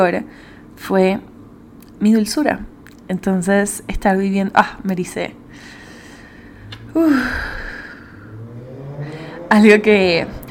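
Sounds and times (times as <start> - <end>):
speech: 0.0 - 1.3, 2.0 - 5.8, 6.9 - 7.6, 9.5 - 10.4
motorcycle roaring past: 7.0 - 10.5.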